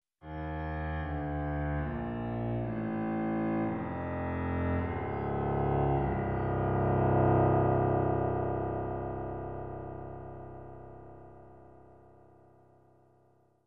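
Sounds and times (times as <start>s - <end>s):
dark and evil piano music: 1.1s - 12.2s.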